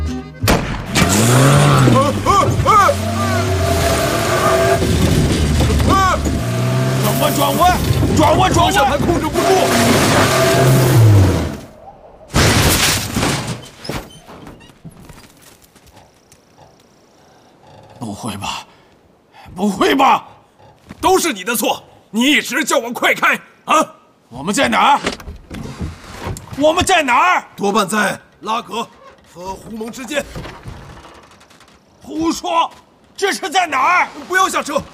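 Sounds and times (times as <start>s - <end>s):
quiet rumbling: 0.5s - 19.3s, 27.9s - 34.9s
car engine revving as the vehicle speeds up: 0.8s - 11.7s
speech: 8.2s - 9.9s, 19.6s - 20.3s, 21.0s - 25.2s, 26.6s - 30.6s, 32.1s - 34.9s.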